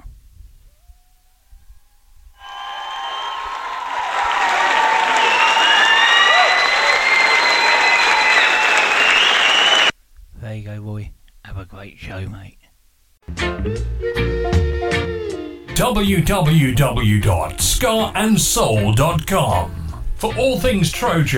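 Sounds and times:
crowd clapping: 2.4 - 9.9
whistles: 2.4 - 9.9
speech: 13.3 - 14.3, 15.8 - 21.3.

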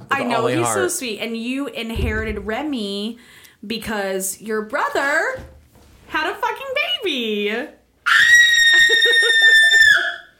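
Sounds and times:
faint lower vocal sounds murmuring: 0.2 - 0.9
speech: 0.2 - 8.3
short shrill scream turned away from microphone: 8.1 - 10.2.

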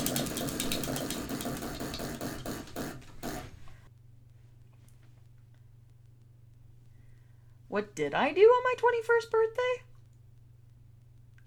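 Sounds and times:
prize wheel spinning with ratcheting clicks: 0.0 - 3.5
speech: 7.7 - 9.9.

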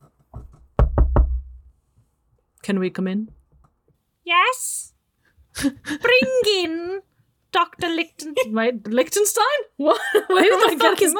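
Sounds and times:
knocking on a door: 0.3 - 1.7
speech: 2.6 - 3.4, 4.2 - 5.0, 5.6 - 11.1.

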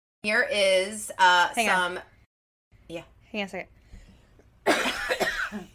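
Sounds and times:
speech: 0.2 - 2.1, 2.9 - 3.7
person coughing: 4.7 - 5.7.

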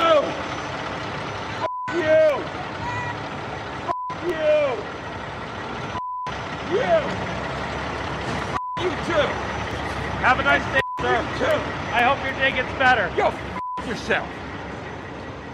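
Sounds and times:
truck engine rumbling while idling and moving: 0.0 - 15.5
truck backup beeper beeps: 1.6 - 2.0, 3.9 - 4.2, 6.0 - 6.3, 8.6 - 9.1, 10.4 - 11.3, 13.5 - 14.0
speech: 10.2 - 14.4.

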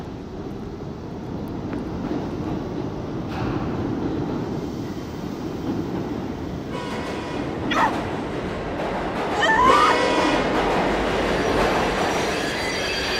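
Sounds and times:
train rolling along the rails: 0.0 - 13.1
high metallic squeals from the train wheels: 12.1 - 13.1.

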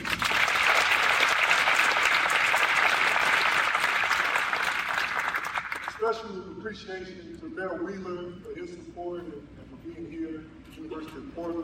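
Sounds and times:
large audience applauding a G League team: 0.0 - 6.0
speech: 6.1 - 11.6.

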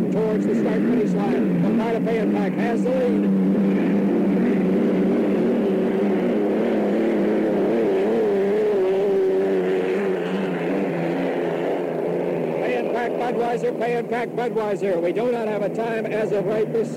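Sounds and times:
racing hydroplane boats roaring past: 0.0 - 16.9
speech: 0.4 - 4.9, 13.3 - 16.9.

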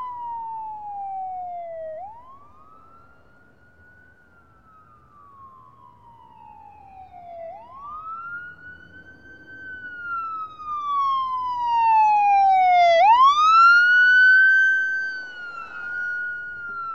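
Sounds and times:
faint low rumble of traffic: 0.0 - 16.9
police siren wailing: 0.0 - 16.9.

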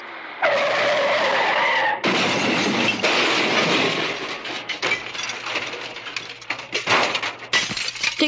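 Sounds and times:
car tires screeching in a long skid: 0.0 - 4.5
heavy car crash: 1.9 - 8.2
glass breaking and clattering: 2.0 - 8.2
metal crunching: 2.0 - 8.2.

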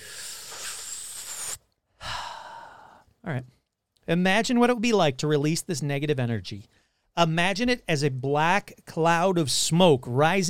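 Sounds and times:
deep belly breath in and out: 0.0 - 3.1
speech: 3.3 - 10.4.

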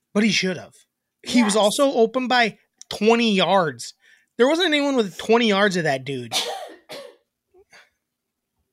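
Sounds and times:
speech: 0.2 - 6.5
person coughing: 6.3 - 7.9.

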